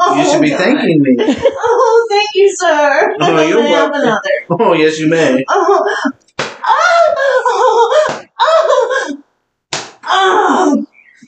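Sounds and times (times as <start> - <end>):
laughter: 0.0 - 9.2
speech: 0.1 - 6.2
hand slaps of a spanking: 6.3 - 6.7, 8.0 - 8.3, 9.7 - 10.1.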